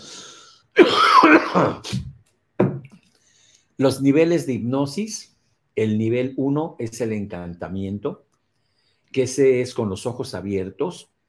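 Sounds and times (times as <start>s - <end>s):
person coughing with a long raspy throaty cough: 0.8s - 2.9s
speech: 1.5s - 2.1s, 3.8s - 8.3s, 9.1s - 11.1s.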